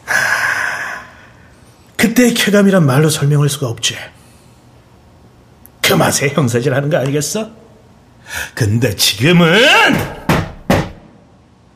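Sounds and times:
speech: 0:02.0 - 0:04.2, 0:05.9 - 0:07.6, 0:08.3 - 0:10.2
brief voice trailing off: 0:09.2 - 0:10.3
firm knocks on the door of a police interrogation room: 0:09.9 - 0:11.1.

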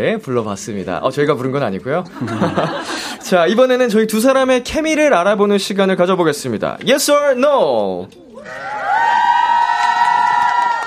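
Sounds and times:
speech: 0:00.0 - 0:08.7
laughter: 0:02.1 - 0:03.4
big crowd of fans screaming and cheering: 0:08.3 - 0:10.8.

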